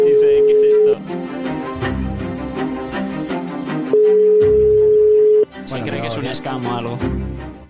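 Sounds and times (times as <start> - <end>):
rhythmic music: 0.0 - 7.6
steady telephone call tone of an unanswered call: 3.9 - 5.5
speech: 6.2 - 7.2.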